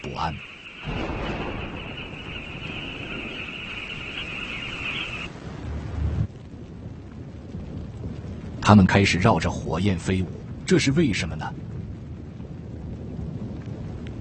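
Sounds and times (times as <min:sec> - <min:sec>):
rain: 0:00.0 - 0:14.1
thunder rumbling: 0:00.0 - 0:14.1
speech: 0:00.2 - 0:01.3, 0:08.7 - 0:11.7
thin high whine: 0:01.3 - 0:05.3.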